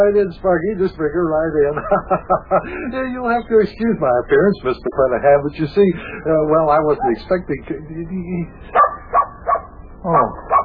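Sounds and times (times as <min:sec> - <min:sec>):
laughter: 0:00.0 - 0:07.8
speech: 0:00.0 - 0:08.9, 0:10.0 - 0:10.5
dog barking: 0:08.7 - 0:10.6.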